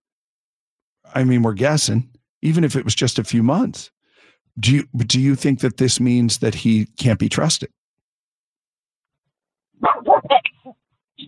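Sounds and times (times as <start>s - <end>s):
speech: 1.0s - 7.8s
dog barking: 9.8s - 10.7s.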